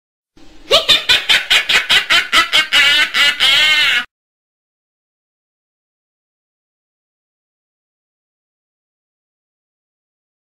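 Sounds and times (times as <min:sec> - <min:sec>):
witch laughing: 0:00.6 - 0:04.1.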